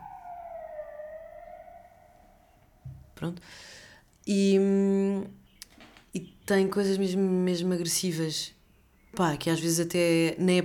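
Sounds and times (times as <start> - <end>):
ambulance siren wailing outside: 0.0 - 2.8
speech: 3.2 - 5.4, 6.1 - 8.6, 9.2 - 10.6.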